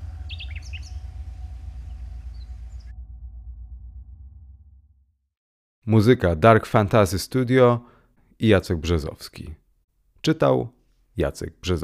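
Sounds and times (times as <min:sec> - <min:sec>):
birds chirping in a morning cemetery: 0:00.0 - 0:02.9
steady low outdoor rumble: 0:00.0 - 0:05.1
speech: 0:05.9 - 0:09.6, 0:10.2 - 0:11.8.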